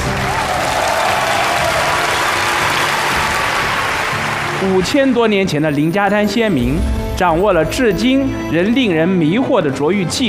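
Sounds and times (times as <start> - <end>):
large audience applauding: 0.0 - 5.3
speech: 4.6 - 10.2.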